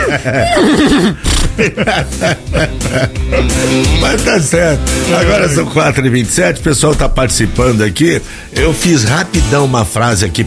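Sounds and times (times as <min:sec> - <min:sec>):
person imitating a horse's neigh: 0:00.0 - 0:01.2
laughter: 0:00.0 - 0:05.3
speech: 0:00.1 - 0:10.4.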